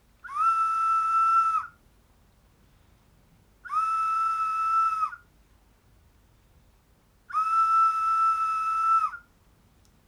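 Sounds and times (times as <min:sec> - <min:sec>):
whistle blowing in a prison recreation courtyard: 0:00.3 - 0:01.7, 0:03.7 - 0:05.2, 0:07.4 - 0:09.2.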